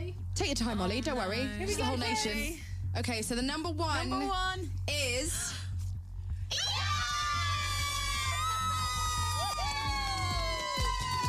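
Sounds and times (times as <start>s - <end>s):
speech: 0.4s - 5.6s
people cheering in excitement: 6.5s - 11.2s
people screaming in excitement: 6.5s - 11.2s.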